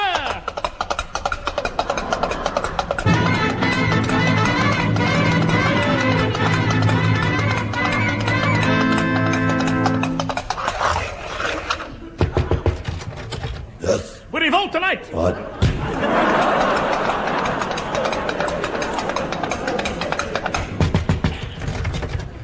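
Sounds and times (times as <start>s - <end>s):
horse galloping away: 0.1s - 13.2s, 16.3s - 22.4s
laughter: 1.6s - 7.6s, 15.2s - 22.0s
sustained musical tones: 3.0s - 10.4s
speech: 14.9s - 15.6s.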